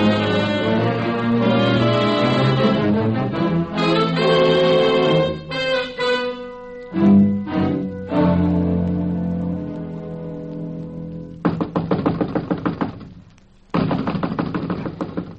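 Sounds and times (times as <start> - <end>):
sustained musical chord: 0.0 - 11.2
knuckles knocking on a door: 11.4 - 13.1, 13.8 - 15.3.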